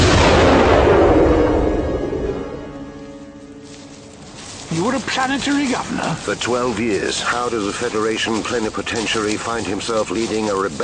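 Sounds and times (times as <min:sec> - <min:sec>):
artillery blast opening a creeping barrage: 0:00.0 - 0:02.9
speech: 0:04.8 - 0:10.8.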